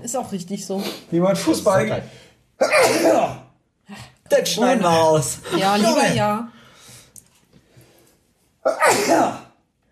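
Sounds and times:
speech: 0.0 - 6.6, 8.6 - 9.4
sneeze: 2.6 - 3.6, 8.6 - 9.6.

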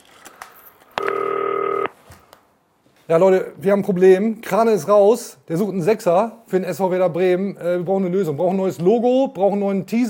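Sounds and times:
electronic keypad tone from a green telephone as a number is dialed: 1.0 - 1.9
speech: 3.1 - 10.0.

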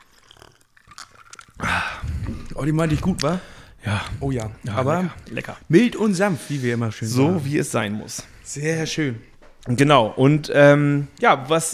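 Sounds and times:
loud wet sip of Korn schnapps: 0.0 - 5.5
small mouth clicks: 0.0 - 5.6
speech: 2.6 - 11.7.

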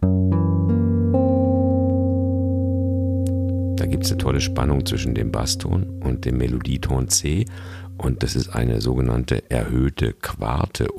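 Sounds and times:
piano tritone substitution chord ringing: 0.8 - 9.2
speech: 3.8 - 10.9.

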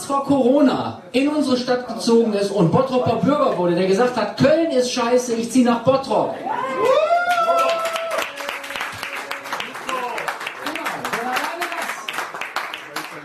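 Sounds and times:
speech: 0.1 - 7.0
person whooping: 6.4 - 9.6
people shouting and cheering: 6.4 - 11.0
crowd applauding: 6.6 - 13.2.

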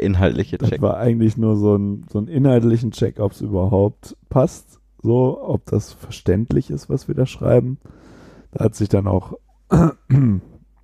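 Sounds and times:
speech: 0.0 - 10.5
throat clearing: 9.7 - 10.6.

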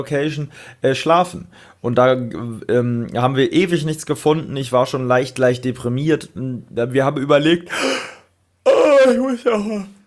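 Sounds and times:
speech: 0.0 - 8.1, 9.0 - 10.0
loud overdriven distorted human yawn: 7.7 - 9.3.

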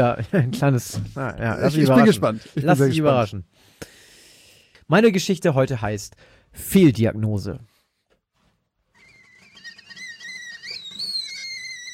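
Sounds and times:
speech: 0.0 - 3.9, 4.9 - 7.7
tea kettle whistling shrilly: 9.0 - 11.9.

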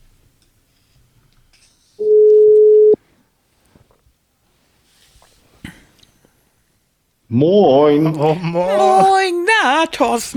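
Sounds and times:
telephone ringback tone while a call is being placed: 2.0 - 3.0
speech: 7.3 - 10.3.

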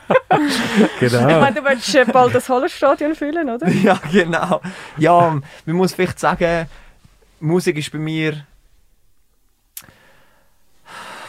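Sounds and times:
laughter: 0.0 - 2.5, 3.6 - 5.5
person out of breath, heavy breathing and panting: 0.4 - 1.2, 4.6 - 5.7, 6.6 - 7.1, 9.8 - 11.2
speech: 0.4 - 6.8, 7.4 - 8.5.

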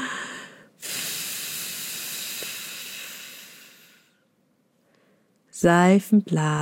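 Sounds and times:
long steady breath blown out: 0.0 - 4.2
short airy inhale: 0.0 - 4.2
speech: 5.6 - 6.6.

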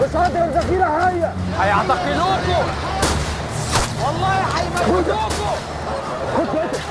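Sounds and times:
agitated crowd of demonstrators shouting and talking at a protest tent camp: 0.0 - 6.8
sharp gunshots from demonstrators: 3.0 - 4.1
laughter: 5.8 - 6.8.

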